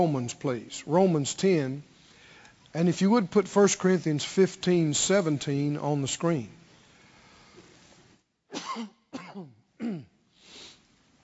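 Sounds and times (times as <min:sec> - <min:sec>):
speech: 0:00.0 - 0:01.9, 0:02.7 - 0:06.6, 0:08.6 - 0:10.1
harsh throaty coughs with throat clearing: 0:08.5 - 0:10.2.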